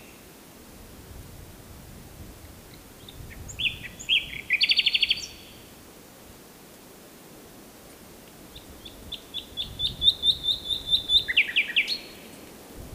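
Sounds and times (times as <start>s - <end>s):
common nightingale Luscinia megarhynchos singing: 2.7s - 5.7s, 8.5s - 12.5s.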